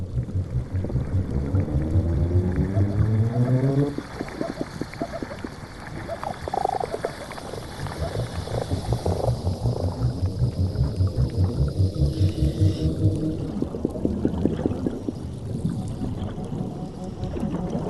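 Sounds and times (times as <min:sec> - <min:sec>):
underwater knocking pulses of fish calls: 0:00.0 - 0:04.9, 0:07.8 - 0:13.6
low droning fish hums recorded by underwater hydrophone: 0:00.0 - 0:17.8
underwater recorded by hydrophone: 0:00.0 - 0:17.8.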